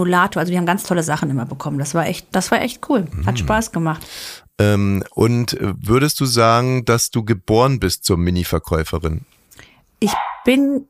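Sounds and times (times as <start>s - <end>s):
speech: 0.0s - 9.4s, 10.0s - 10.8s
dog barking: 10.1s - 10.6s.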